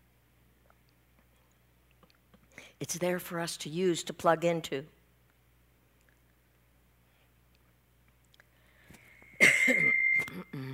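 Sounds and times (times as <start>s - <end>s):
speech: 2.8s - 5.0s
person clearing throat: 9.4s - 10.7s
person coughing: 9.4s - 10.7s.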